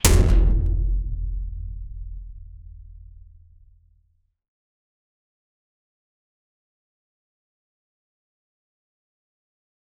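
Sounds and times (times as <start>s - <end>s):
heavy metal ball hitting with a deep impact: 0.0s - 3.8s.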